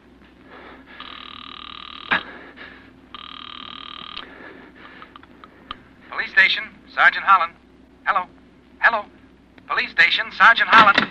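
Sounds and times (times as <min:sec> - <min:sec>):
faint hiss: 0:00.0 - 0:11.0
telephone ringing on the line: 0:01.0 - 0:02.2, 0:03.1 - 0:04.2
speech: 0:06.4 - 0:08.3, 0:08.9 - 0:09.2, 0:09.8 - 0:11.0.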